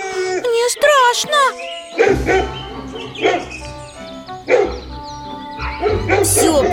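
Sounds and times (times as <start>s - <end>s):
pack of dogs barking in a yard: 0.0s - 6.7s
steady tonal background: 0.8s - 6.7s
speech: 1.1s - 3.4s.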